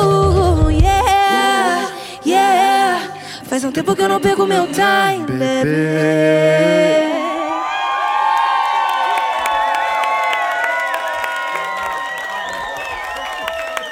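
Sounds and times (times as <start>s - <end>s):
live pop song performed by a band with a guest vocalist: 0.0s - 5.1s
speech: 3.7s - 7.0s
crowd cheering and applause: 7.2s - 13.9s.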